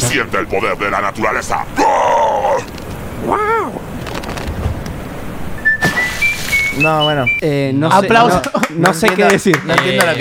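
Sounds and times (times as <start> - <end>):
rushing rain-like noise: 0.0 - 5.6
speech: 0.1 - 3.8, 6.8 - 10.1
whistled jingle from deodorant commercial: 5.6 - 7.5.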